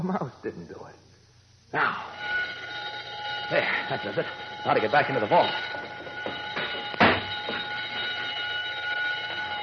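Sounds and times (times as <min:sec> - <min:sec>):
speech: 0:00.0 - 0:01.1, 0:01.7 - 0:02.4, 0:03.5 - 0:05.8
burglar alarm ringing: 0:01.9 - 0:09.6
knock or thump: 0:06.3 - 0:07.6.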